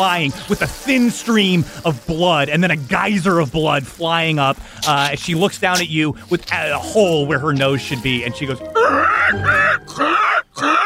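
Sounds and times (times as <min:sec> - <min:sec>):
speech: 0:00.0 - 0:10.2
voice imitating a wounded woman's pained gasping: 0:08.8 - 0:10.8.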